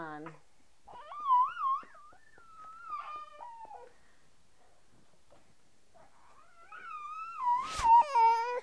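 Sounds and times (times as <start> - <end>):
baby in need of a diaper change whining: 0.9 - 4.0, 6.0 - 8.6.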